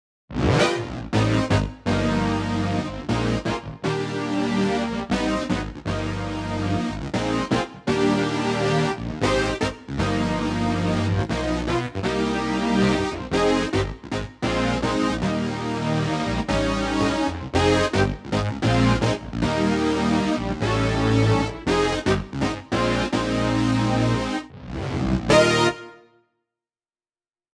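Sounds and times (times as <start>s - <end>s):
poly synth on a digital organ: 0.4s - 24.5s, 25.3s - 26.1s.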